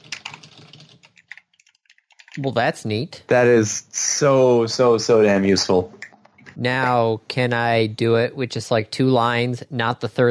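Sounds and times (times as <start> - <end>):
typing on a computer keyboard: 0.0 - 2.4
speech: 2.4 - 6.0, 6.6 - 10.2.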